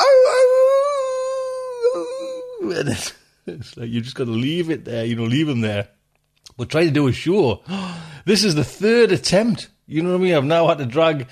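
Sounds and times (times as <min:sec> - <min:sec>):
puppy howling in a pet cage: 0:00.0 - 0:02.7
speech: 0:02.1 - 0:11.3.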